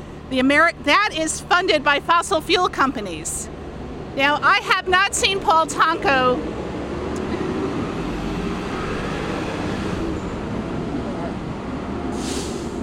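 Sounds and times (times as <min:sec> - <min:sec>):
heavy trucks rumbling past: 0:00.0 - 0:12.8
speech: 0:00.3 - 0:03.6, 0:04.2 - 0:06.6
hiss of air: 0:12.1 - 0:12.8.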